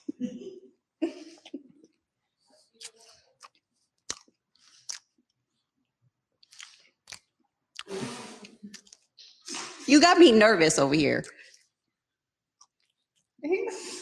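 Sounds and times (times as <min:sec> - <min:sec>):
wet chewing of crunchy cheesecake dessert: 0:02.8 - 0:05.3, 0:06.4 - 0:07.9, 0:12.6 - 0:13.3
speech: 0:09.9 - 0:11.4.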